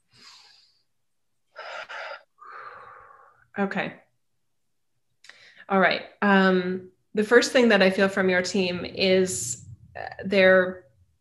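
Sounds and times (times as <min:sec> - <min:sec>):
deep breaths: 0:00.0 - 0:03.5, 0:05.2 - 0:05.7
speech: 0:03.6 - 0:04.0, 0:05.7 - 0:10.8.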